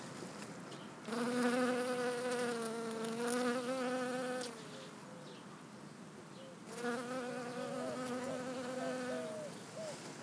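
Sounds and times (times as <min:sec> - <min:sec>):
Western honey bee wing buzz: 0:01.1 - 0:04.6, 0:06.7 - 0:09.5.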